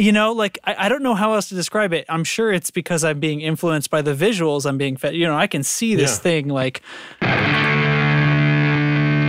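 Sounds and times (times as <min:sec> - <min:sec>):
speech: 0:00.0 - 0:07.9
electric guitar through buzzy fuzz pedal holding a saturated note: 0:07.2 - 0:09.2.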